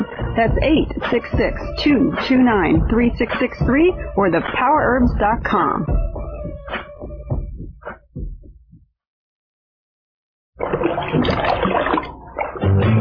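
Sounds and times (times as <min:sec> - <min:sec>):
speech: 0:00.4 - 0:06.0
water splashing and sloshing in a bathtub: 0:10.6 - 0:12.9.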